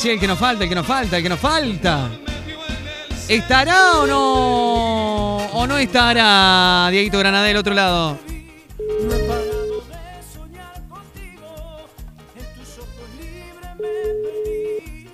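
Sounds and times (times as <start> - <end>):
speech: 0.0 - 2.2, 3.3 - 8.3
upbeat music bed: 0.2 - 15.1
outgoing phone call ringback tone: 8.8 - 9.9, 13.8 - 15.0.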